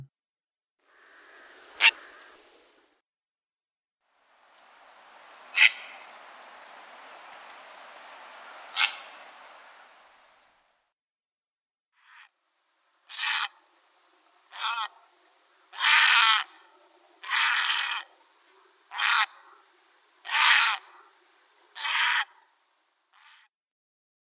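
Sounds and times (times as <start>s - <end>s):
purple heron calling: 1.0s - 2.8s, 4.2s - 10.6s, 12.7s - 22.7s.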